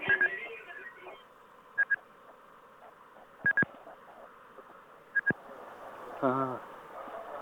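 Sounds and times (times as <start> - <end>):
steady hum: 0.0 - 7.4
electronic keypad tones from a coin payphone: 1.8 - 2.0, 3.4 - 3.7, 5.2 - 5.4.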